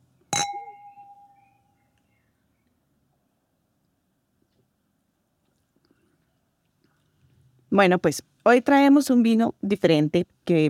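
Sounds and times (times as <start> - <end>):
glasses clinking in a toast: 0.3 - 1.4
speech: 7.7 - 10.6.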